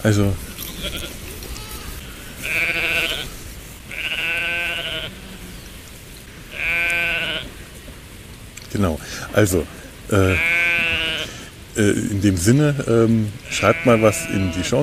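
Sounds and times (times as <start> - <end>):
speech: 0.0 - 0.5, 8.7 - 10.6, 11.8 - 14.8
steady hiss: 0.0 - 14.8
sheep bleating: 0.6 - 5.5, 6.5 - 7.5, 10.2 - 11.5, 13.4 - 14.8.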